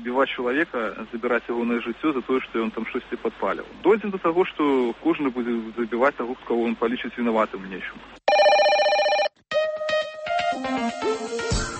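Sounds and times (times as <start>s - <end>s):
speech: 0.0s - 8.2s
telephone ringing for incoming call: 8.3s - 9.4s
quick bright melodic run of synthetic notes: 9.5s - 11.7s.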